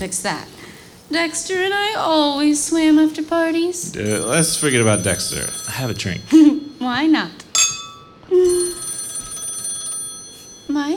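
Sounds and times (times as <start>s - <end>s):
speech: 0.0s - 7.4s
telephone ringing: 4.0s - 10.9s.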